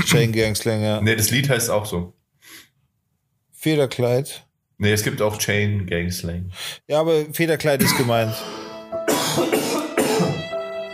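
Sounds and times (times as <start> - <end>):
speech: 0.0 - 2.6, 3.6 - 8.6, 9.3 - 9.6
person coughing harshly: 7.8 - 8.3, 9.1 - 10.4.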